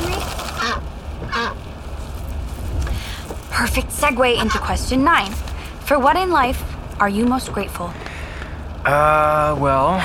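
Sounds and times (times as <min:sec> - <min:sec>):
low steady rumble: 0:00.0 - 0:10.0
duck honking in the back seat of a car: 0:00.5 - 0:01.6, 0:04.3 - 0:04.8
speech: 0:03.6 - 0:08.0, 0:08.8 - 0:10.0.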